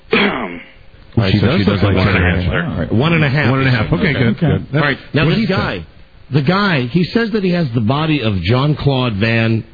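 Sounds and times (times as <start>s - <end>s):
deliberate coughing or throat clearing: 0.1s - 0.8s
speech: 1.3s - 9.7s.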